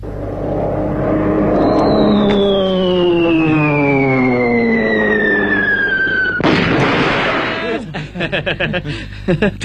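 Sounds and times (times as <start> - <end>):
vocal explosion burst imitating a bomb: 0.0 - 7.9
man vocally imitating Japanese warplanes dropping bombs: 1.4 - 6.6
laughter: 7.5 - 9.6.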